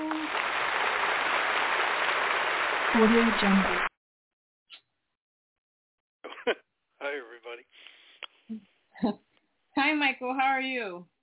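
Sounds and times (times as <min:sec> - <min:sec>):
dense applause from a group: 0:00.0 - 0:03.9
speech: 0:03.0 - 0:03.9, 0:06.4 - 0:07.2, 0:08.5 - 0:09.2, 0:09.8 - 0:11.1
laughter: 0:06.2 - 0:06.6.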